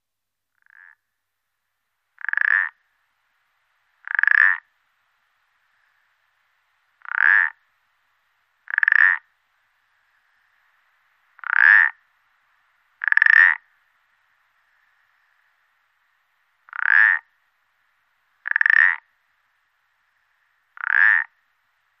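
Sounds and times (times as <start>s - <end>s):
Pelodytes punctatus calling: 0.6s - 1.0s, 2.2s - 2.8s, 4.0s - 4.7s, 7.0s - 7.6s, 8.7s - 9.3s, 9.9s - 12.1s, 13.0s - 13.8s, 16.6s - 17.4s, 18.4s - 19.1s, 20.0s - 21.4s.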